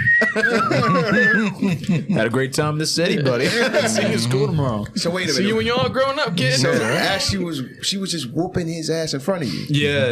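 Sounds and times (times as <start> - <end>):
person whistling a short wavering tune: 0.0 - 1.5
laughter: 0.0 - 2.4, 3.1 - 5.8
speech: 0.3 - 10.1.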